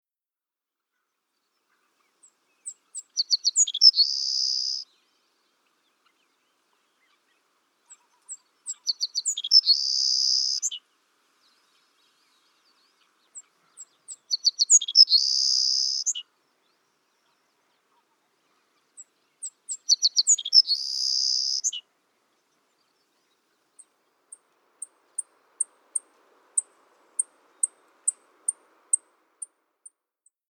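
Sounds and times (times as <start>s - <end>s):
Savannah sparrow singing: 1.7s - 10.8s, 11.5s - 30.4s.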